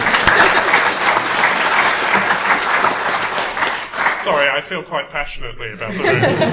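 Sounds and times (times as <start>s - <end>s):
laughter: 0.0s - 1.2s, 5.8s - 6.5s
audience applause: 0.0s - 4.6s
speech: 4.2s - 6.5s.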